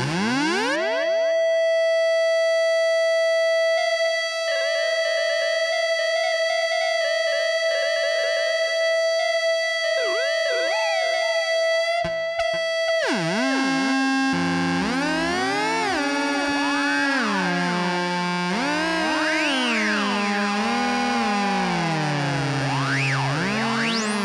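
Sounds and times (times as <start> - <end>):
guitar pedals self-oscillating through filters and delay: 0.0 - 24.2
swooping siren-like sweeps with overtones: 10.0 - 11.6.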